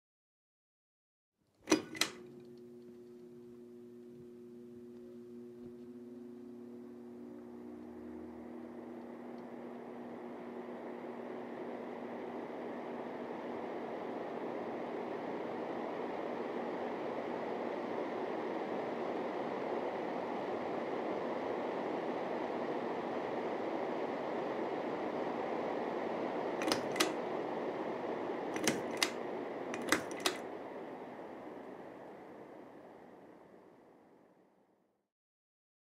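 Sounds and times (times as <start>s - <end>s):
ceiling fan whirring: 1.5s - 34.8s
ceiling fan switching on: 1.7s - 2.2s, 26.6s - 27.2s, 28.5s - 30.6s.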